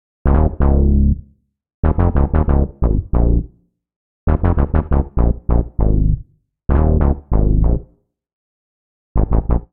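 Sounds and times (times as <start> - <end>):
Bb minor bassline at 89 bpm: 0.2 - 3.6, 4.3 - 8.0, 9.2 - 9.7.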